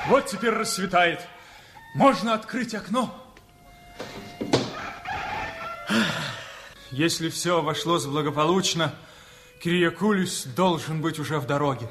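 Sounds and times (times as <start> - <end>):
rooster crowing at dawn: 0.0 - 0.7, 4.4 - 6.7
speech: 0.1 - 3.2, 5.9 - 6.3, 6.9 - 11.8.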